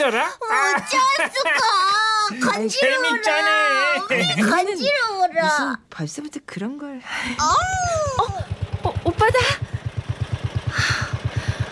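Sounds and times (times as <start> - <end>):
speech: 0.0 - 8.5, 9.2 - 9.7
laughter: 0.5 - 4.8
farm power tiller engine chugging: 7.4 - 11.7.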